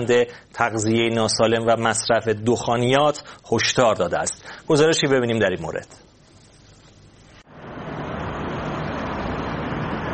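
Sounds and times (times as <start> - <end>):
speech: 0.0 - 6.1
dense street traffic in central London: 7.5 - 10.1.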